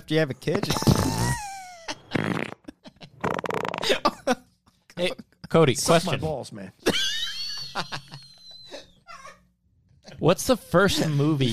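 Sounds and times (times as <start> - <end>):
speech: 0.1 - 1.4, 5.0 - 7.0, 10.2 - 11.5
laughter: 0.6 - 3.2, 3.8 - 4.6, 5.2 - 9.5
person blowing wet buzzing raspberries imitating a fart: 0.7 - 2.6.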